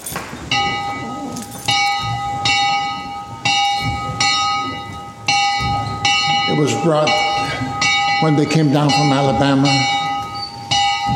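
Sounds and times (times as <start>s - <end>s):
original church bell brought from Alabama ringing: 0.0s - 11.1s
speech: 6.6s - 7.4s, 8.2s - 10.0s.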